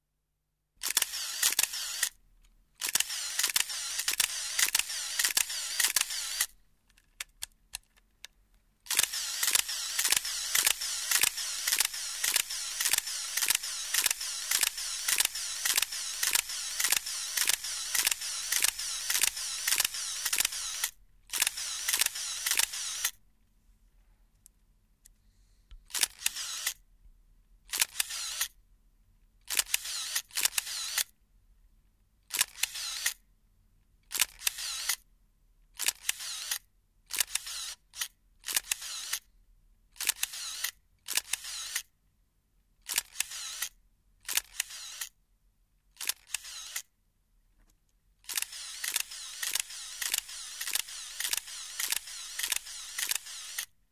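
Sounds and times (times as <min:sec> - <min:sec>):
camera shutter click: 0:00.8 - 0:02.2, 0:02.8 - 0:06.6, 0:08.9 - 0:23.2, 0:25.9 - 0:26.8, 0:27.7 - 0:28.6, 0:29.5 - 0:31.1, 0:32.3 - 0:33.2, 0:34.1 - 0:35.0, 0:35.8 - 0:39.3, 0:40.0 - 0:41.9, 0:42.9 - 0:45.1, 0:46.0 - 0:46.9, 0:48.3 - 0:53.7.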